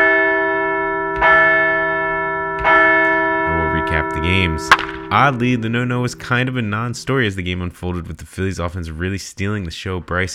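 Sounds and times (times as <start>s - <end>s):
large bell tolling: 0.0s - 8.1s
speech: 4.0s - 10.3s.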